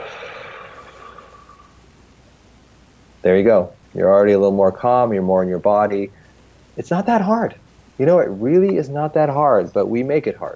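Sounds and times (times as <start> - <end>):
deep breath in and out during a one-breath meditation: 0.0 - 1.8
speech: 3.2 - 6.2, 6.8 - 10.5.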